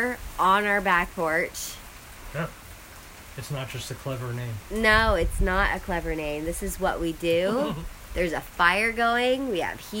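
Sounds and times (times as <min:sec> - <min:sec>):
speech: 0:00.0 - 0:02.6, 0:03.4 - 0:09.9
heavy rain pouring down heard from a back porch: 0:00.0 - 0:09.9
laughter: 0:07.5 - 0:07.8
short voice sound: 0:07.5 - 0:07.9.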